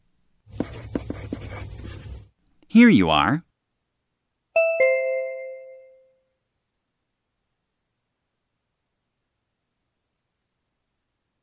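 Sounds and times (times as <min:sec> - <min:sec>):
pen scratching across a paper form: 0:00.5 - 0:02.3
speech: 0:02.8 - 0:03.5.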